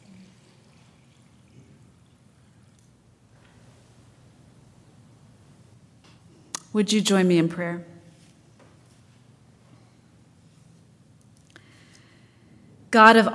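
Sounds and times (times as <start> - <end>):
water pouring: 0.0 - 3.0
speech: 6.8 - 7.9, 12.9 - 13.3.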